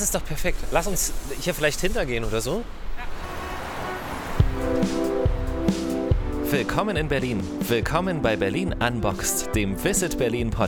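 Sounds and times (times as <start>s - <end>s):
speech: 0.0s - 3.1s, 6.5s - 10.6s
broad street noise: 0.0s - 8.5s
double-decker city bus in Berlin driving by: 2.2s - 6.8s.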